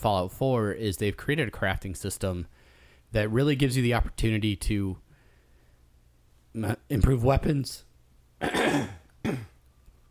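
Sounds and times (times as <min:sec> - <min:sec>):
speech: 0:00.0 - 0:05.0, 0:06.6 - 0:09.5
rough throaty coughing: 0:08.4 - 0:09.6.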